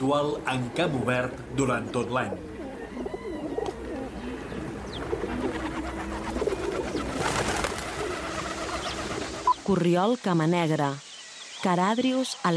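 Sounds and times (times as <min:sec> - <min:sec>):
speech: 0:00.0 - 0:03.1, 0:09.7 - 0:11.0, 0:11.6 - 0:12.5
rock doves cooing: 0:00.0 - 0:09.7.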